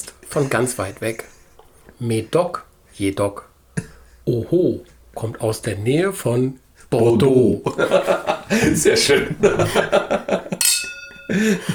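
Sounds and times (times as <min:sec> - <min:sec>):
speech: 0:00.0 - 0:01.4, 0:02.0 - 0:10.2, 0:11.3 - 0:11.7
laughter: 0:00.2 - 0:01.7, 0:07.6 - 0:11.7
wine glasses of red Bordeaux Médoc clinking in a toast: 0:10.5 - 0:11.7.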